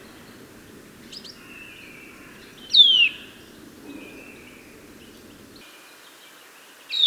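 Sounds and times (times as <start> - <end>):
Eurasian nuthatch (Sitta europaea) whistled calls: 0.0 - 5.6
faint background hiss: 0.0 - 6.9.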